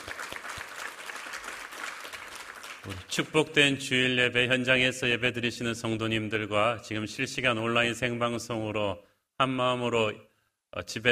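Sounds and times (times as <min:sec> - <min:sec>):
large audience applauding: 0:00.0 - 0:03.1
speech: 0:02.8 - 0:11.1.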